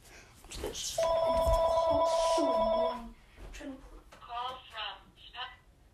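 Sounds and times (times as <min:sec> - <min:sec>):
telephone ringing with a steady electronic tone: 0:01.0 - 0:03.1.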